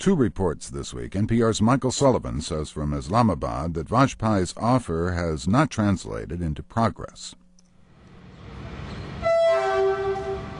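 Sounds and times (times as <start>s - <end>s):
speech: 0.0s - 7.4s
trains rumbling at a railway station: 8.2s - 10.5s
loud sustained train horn: 9.1s - 10.5s.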